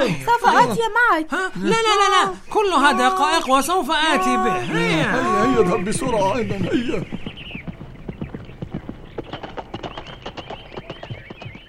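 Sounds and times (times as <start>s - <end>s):
speech: 0.0s - 7.2s
horse hooves clip-clopping: 4.1s - 11.6s.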